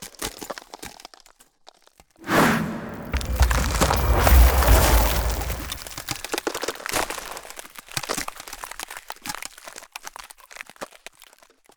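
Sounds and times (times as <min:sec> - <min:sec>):
ice spell freezing: 0:02.2 - 0:06.3.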